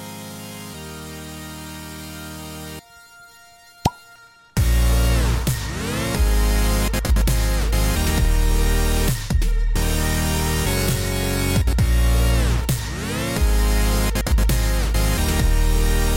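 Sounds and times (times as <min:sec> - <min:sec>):
pop of a grappa bottle being opened: 0:03.8 - 0:04.1
loud music: 0:04.6 - 0:16.1.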